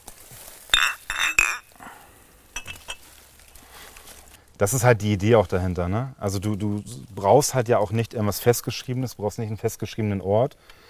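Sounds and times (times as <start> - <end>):
glasses clinking in a toast: 0.7 - 1.8, 2.6 - 3.0
speech: 4.6 - 10.8.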